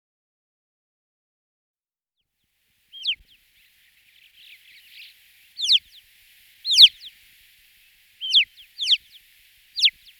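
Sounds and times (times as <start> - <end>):
faint buzzy Alpine chough notes: 3.0 - 10.1.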